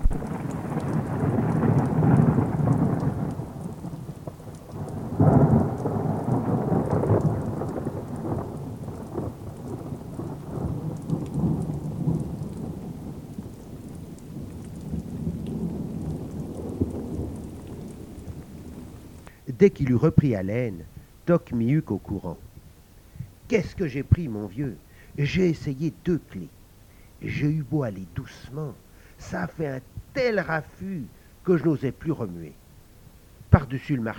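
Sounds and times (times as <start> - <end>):
deep rolls of thunder: 0.0 - 26.6, 27.2 - 32.6, 33.4 - 34.1
torrential rain of a thunderstorm: 0.0 - 34.1
speech: 19.6 - 22.4, 23.5 - 26.6, 27.2 - 32.6, 33.5 - 34.1.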